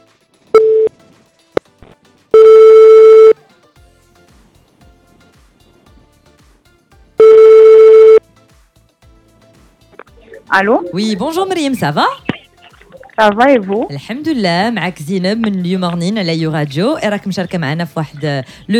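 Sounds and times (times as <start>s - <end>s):
telephone ringback tone on an outgoing call: 2.4s - 3.4s, 7.2s - 8.2s
speech: 10.6s - 12.2s, 13.2s - 18.7s.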